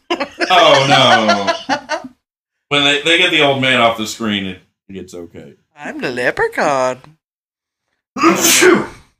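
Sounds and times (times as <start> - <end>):
laughter: 0.0 - 2.2
speech: 0.2 - 1.8, 2.7 - 7.2, 8.2 - 9.0
loud sneeze: 8.2 - 9.1.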